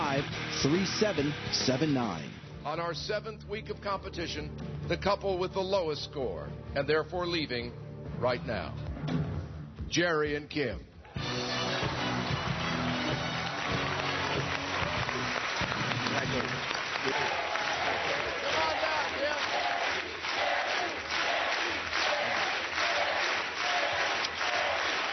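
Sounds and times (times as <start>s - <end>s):
large studio crowd cheering and applauding: 0.0s - 2.4s, 11.0s - 25.1s
speech: 0.2s - 9.3s, 9.9s - 11.9s.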